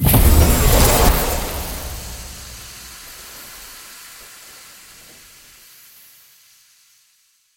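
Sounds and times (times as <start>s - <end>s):
ice explosion: 0.0s - 5.5s.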